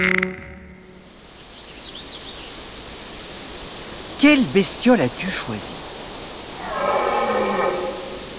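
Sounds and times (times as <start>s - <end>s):
faint hiss: 0.2s - 8.3s
speech: 4.2s - 5.9s
moose on a vast plain in Sweden in cool winter weather giving a groaning bellow: 6.6s - 8.3s.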